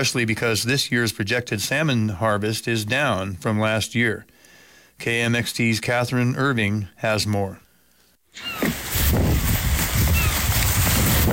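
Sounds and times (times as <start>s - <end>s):
speech: 0.0s - 4.4s, 5.0s - 7.6s, 8.4s - 8.8s
faint high cries: 8.4s - 8.7s
low rumbling wash of water at a harbor dock: 8.4s - 11.3s
wind gusting across a harbor dock in Kodiak: 8.7s - 11.3s.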